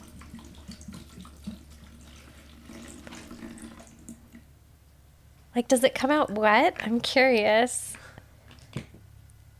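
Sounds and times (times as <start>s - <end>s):
water pouring from a bottle into a small plastic toy cauldron: 0.0s - 4.5s
speech: 5.6s - 7.9s.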